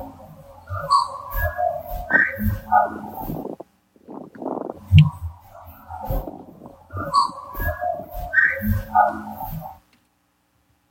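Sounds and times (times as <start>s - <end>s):
whistled tones: 0.7s - 3.3s, 6.9s - 9.7s.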